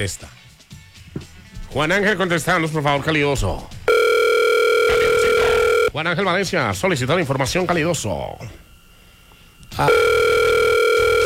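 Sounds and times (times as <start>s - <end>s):
speech: 0.0s - 0.4s, 1.7s - 3.8s, 6.0s - 8.6s, 9.7s - 10.2s
unanswered telephone call ringing tone: 3.9s - 5.9s, 9.7s - 11.2s.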